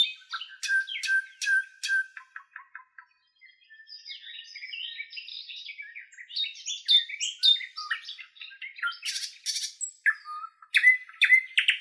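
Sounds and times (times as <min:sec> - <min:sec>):
nightingale singing: 0:00.0 - 0:11.8.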